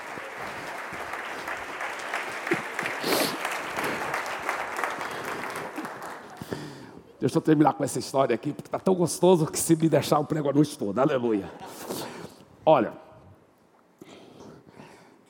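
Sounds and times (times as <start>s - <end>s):
audience applause: 0.0s - 6.8s
speech: 7.2s - 12.1s, 12.7s - 13.0s.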